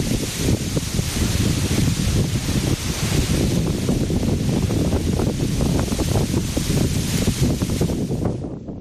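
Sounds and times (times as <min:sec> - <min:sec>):
strong wind gusts outdoors in Lugo Galicia buffeting the microphone: 0:00.0 - 0:08.8.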